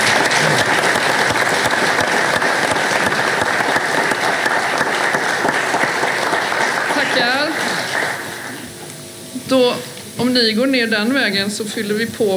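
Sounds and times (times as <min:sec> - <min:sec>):
audience applause of many hands clapping: 0:00.0 - 0:08.7
speech: 0:10.3 - 0:12.3.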